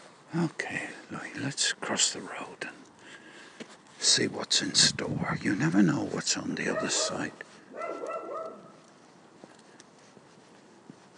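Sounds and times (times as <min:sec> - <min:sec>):
faint ticks like footsteps outdoors: 0:00.0 - 0:11.1
speech: 0:00.3 - 0:02.9, 0:04.0 - 0:07.6
dog barking: 0:06.6 - 0:08.8.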